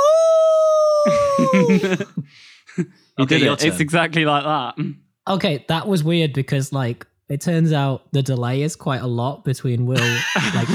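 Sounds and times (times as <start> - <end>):
person imitating a wolf howl: 0.0 - 2.0
laughter: 1.0 - 3.8, 10.0 - 10.7
speech: 1.0 - 10.7.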